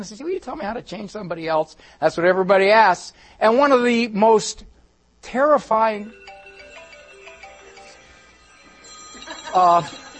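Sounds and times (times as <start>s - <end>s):
speech: 0.0s - 6.2s, 9.5s - 10.0s
phone ringing with a warbling electronic tone: 6.0s - 10.1s.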